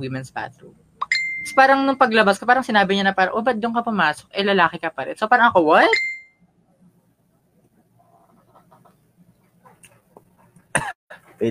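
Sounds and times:
speech: 0:00.0 - 0:06.1
person coughing after gin went down the wrong way: 0:10.7 - 0:11.0.

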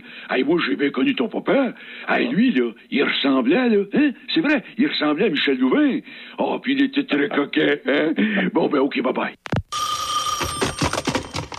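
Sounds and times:
speech: 0:00.3 - 0:09.6
telephone ringing with a bright electronic trill: 0:09.7 - 0:11.5.

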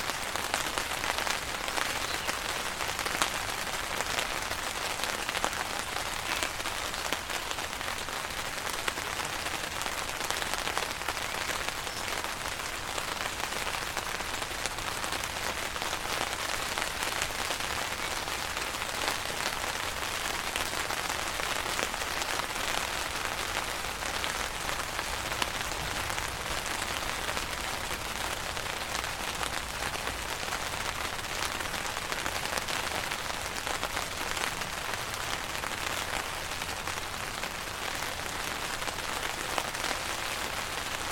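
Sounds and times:
dense rain pattering on a tent while camping: 0:00.0 - 0:41.0.

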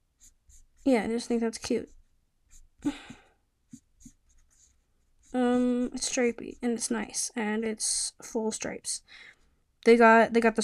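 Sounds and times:
mechanical pencil scratching across paper while drawing: 0:00.1 - 0:02.8, 0:03.7 - 0:07.3
speech: 0:00.8 - 0:02.0, 0:02.8 - 0:03.2, 0:05.3 - 0:10.6.

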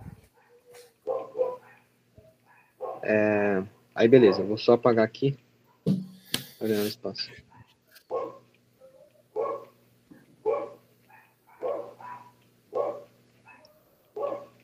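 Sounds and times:
faint constant hum: 0:00.0 - 0:14.6
dogs fighting, barking and scuffling: 0:00.2 - 0:03.1, 0:07.4 - 0:14.6
speech: 0:03.0 - 0:05.4, 0:06.7 - 0:07.5.

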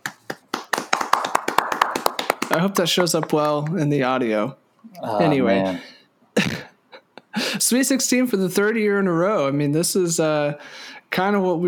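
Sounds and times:
sharp hand claps: 0:00.0 - 0:04.1
speech: 0:02.5 - 0:06.5, 0:07.6 - 0:11.6.

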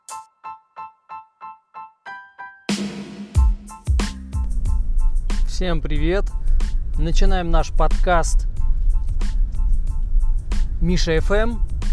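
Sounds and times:
car engine and road rumble inside car cabin: 0:04.2 - 0:11.9
speech: 0:05.6 - 0:08.5, 0:10.8 - 0:11.7.

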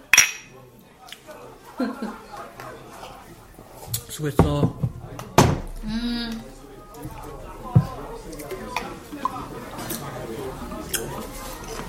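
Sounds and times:
glasses clinking in a toast: 0:00.0 - 0:00.6
people chattering: 0:00.0 - 0:11.8
people chuckling softly: 0:01.6 - 0:02.5
speech: 0:01.8 - 0:02.2, 0:04.2 - 0:04.8.

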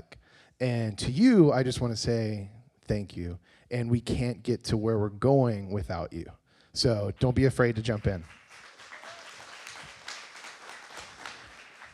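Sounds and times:
speech: 0:00.6 - 0:08.4
audience applauding: 0:07.8 - 0:11.9.

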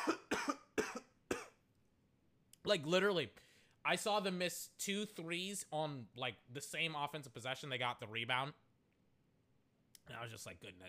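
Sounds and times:
person coughing: 0:00.0 - 0:01.6
speech: 0:02.7 - 0:08.6, 0:10.1 - 0:10.8.

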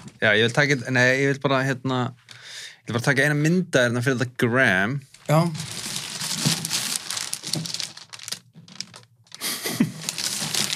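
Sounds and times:
speech: 0:00.2 - 0:02.2, 0:02.9 - 0:05.7
wrapping on a mystery gift package crinkling and tearing as it is opened: 0:05.2 - 0:10.7.

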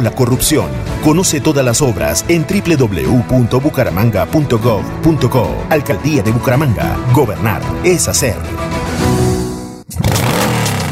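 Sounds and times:
speech: 0:00.0 - 0:09.1
motorcycle engine revving: 0:09.9 - 0:10.9.

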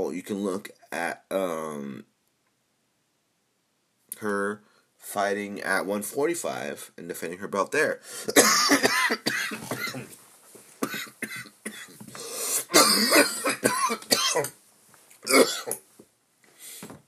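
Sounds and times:
speech: 0:00.0 - 0:02.1, 0:04.2 - 0:10.1, 0:15.3 - 0:15.8
person coughing: 0:08.2 - 0:10.2, 0:10.8 - 0:12.0, 0:12.6 - 0:14.5, 0:15.3 - 0:15.8
person clearing throat: 0:08.3 - 0:10.2, 0:12.6 - 0:14.6, 0:15.2 - 0:15.8
strained breaths: 0:12.1 - 0:12.7.

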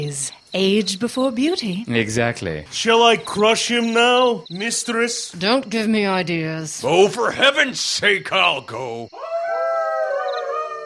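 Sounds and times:
speech: 0:00.0 - 0:09.3
wolf howling: 0:09.1 - 0:10.8.

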